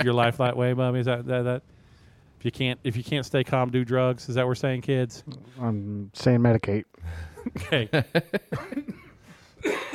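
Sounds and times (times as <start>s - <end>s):
speech: 0.0s - 1.8s, 2.4s - 9.0s
dry hacking cough: 8.5s - 9.9s.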